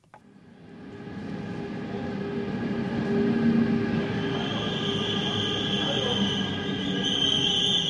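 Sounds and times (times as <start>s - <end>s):
S-Bahn double-deck commuter train rolling into station in Zürich: 0.3s - 7.8s
high metallic wheel squeals of commuter train: 4.1s - 7.8s.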